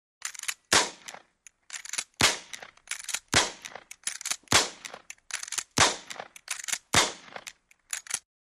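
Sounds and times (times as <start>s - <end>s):
old Civil War repeating rifle rapid fire outdoors: 0.7s - 1.2s, 1.9s - 7.5s.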